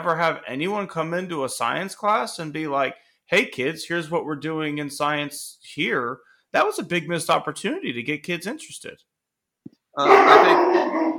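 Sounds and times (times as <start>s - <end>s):
speech: 0.0s - 9.1s, 10.0s - 11.1s
household dog growling: 10.0s - 11.1s.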